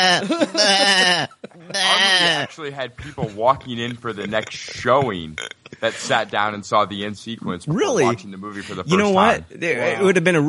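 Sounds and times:
sheep bleating: 0.0 - 2.5
laughter: 0.0 - 6.4
speech: 0.0 - 10.4.

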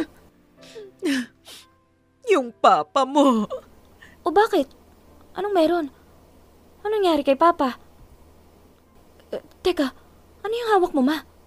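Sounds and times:
mother crying and whimpering in a bedroom at home: 0.0 - 1.7, 3.2 - 3.8
speech: 2.4 - 3.6, 4.2 - 4.8, 5.4 - 6.0, 6.8 - 7.8, 9.3 - 11.3.

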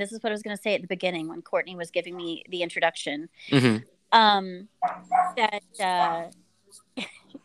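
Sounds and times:
speech: 0.0 - 7.2
dog barking and yipping: 4.8 - 5.4.

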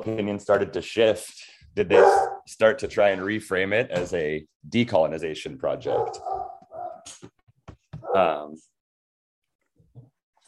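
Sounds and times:
speech: 0.0 - 6.5, 8.1 - 8.7
dogs barking: 1.9 - 2.4, 5.8 - 7.1.

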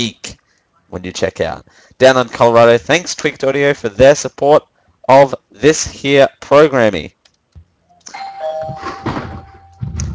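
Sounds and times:
speech: 0.0 - 0.2, 0.9 - 7.2
doorbell chime ringing: 8.1 - 10.1
low thumps: 8.6 - 10.1
rustling noise: 8.6 - 10.1.

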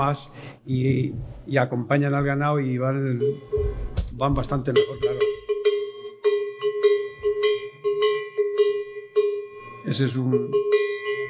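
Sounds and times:
speech: 0.0 - 5.4, 9.9 - 10.8
goat herd livestock bell being shaken: 4.7 - 11.2.

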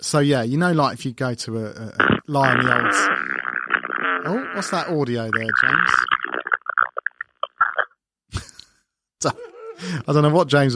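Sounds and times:
speech: 0.1 - 6.1, 9.2 - 10.7
fart: 2.0 - 7.9.

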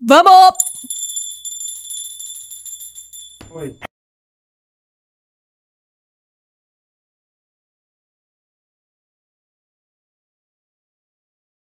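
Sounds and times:
speech: 0.1 - 0.7, 3.6 - 3.9
small bell shaken hard and ringing: 0.5 - 3.9.

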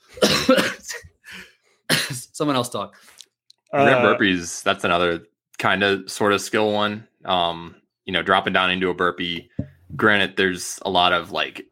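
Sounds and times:
person coughing: 0.0 - 1.1, 1.9 - 2.3
speech: 0.5 - 0.8, 2.4 - 11.7.

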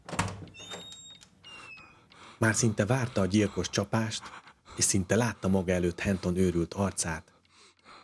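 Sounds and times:
door hinges creaking: 0.0 - 2.3
speech: 2.4 - 7.3.

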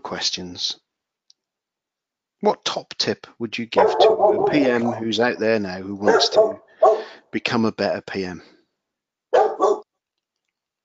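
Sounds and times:
speech: 0.1 - 0.8, 2.4 - 8.6
dog barking: 3.8 - 7.2, 9.3 - 9.9.

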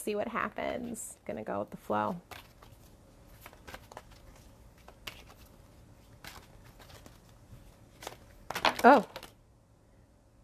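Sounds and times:
speech: 0.0 - 2.4, 8.8 - 9.2
tarot cards being shuffled: 2.0 - 9.4.

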